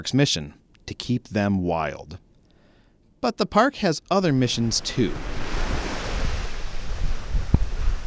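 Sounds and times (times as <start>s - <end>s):
speech: 0.0s - 2.2s, 3.2s - 5.4s
surf waves washing ashore on a sand beach: 4.4s - 8.0s
low rumble of wind buffeting the microphone: 4.6s - 8.0s.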